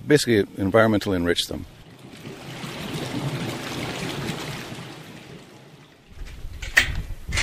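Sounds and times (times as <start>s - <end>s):
speech: 0.1s - 1.8s
small creek water flowing: 0.3s - 6.6s
louder splashes or knocks: 1.6s - 7.4s.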